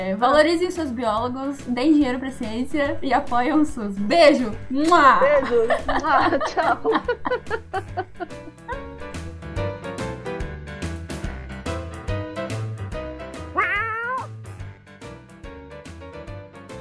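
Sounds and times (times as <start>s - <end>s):
speech: 0.0s - 8.7s
rhythmic music: 0.0s - 16.8s
laughter: 5.2s - 9.0s
cat yowling: 13.5s - 14.4s.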